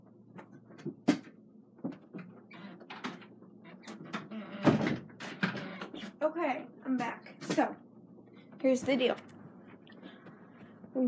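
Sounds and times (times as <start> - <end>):
door knocks, clicks and rattles: 1.9 - 6.0
speech: 6.2 - 7.8, 8.6 - 9.3.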